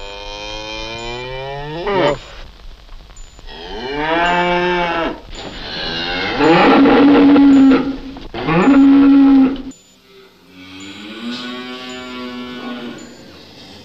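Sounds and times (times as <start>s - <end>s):
cow mooing: 0.0s - 2.3s, 3.5s - 13.8s.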